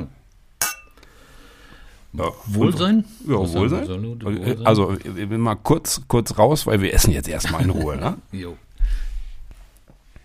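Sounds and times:
beer glasses clinking in a toast: 0:00.6 - 0:01.0
speech: 0:02.1 - 0:08.7
laughter: 0:07.4 - 0:08.2.

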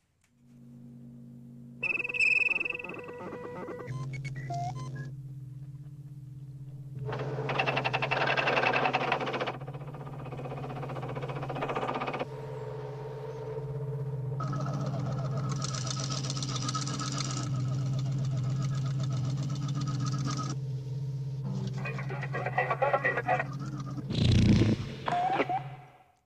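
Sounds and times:
low mechanical drone: 0:00.0 - 0:26.1
warbling chirping electronic tones: 0:01.7 - 0:05.9, 0:07.0 - 0:24.4.

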